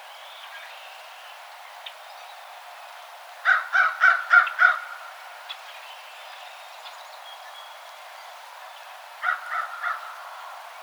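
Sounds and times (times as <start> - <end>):
American crow calling with hoarse caws: 3.5 - 4.8, 9.2 - 10.2.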